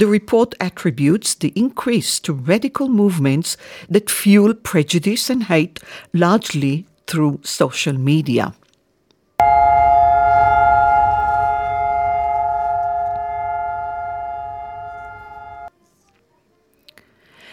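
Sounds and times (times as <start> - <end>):
speech: 0.0 - 8.6
Israeli Holocaust Remembrance Day memorial siren steady tone: 9.4 - 15.7.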